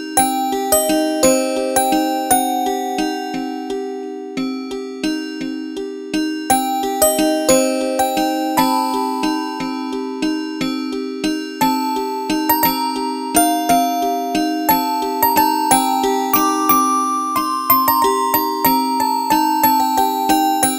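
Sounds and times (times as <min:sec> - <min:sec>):
music box tone on a synthesizer: 0:00.1 - 0:20.7.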